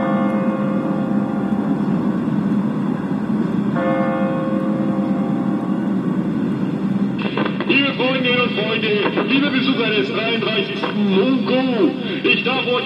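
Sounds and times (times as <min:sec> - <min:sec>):
large church bell striking the hour: 0:00.0 - 0:07.2
constant low outdoor rumble: 0:00.0 - 0:12.8
speech: 0:08.9 - 0:12.8.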